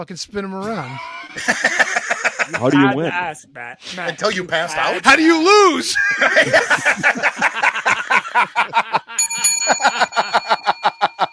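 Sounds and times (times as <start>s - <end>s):
speech: 0.0s - 7.7s, 8.4s - 9.0s
rapid rhythmic snickering laughter: 0.8s - 2.6s, 6.0s - 11.3s
bell ringing: 9.2s - 11.3s.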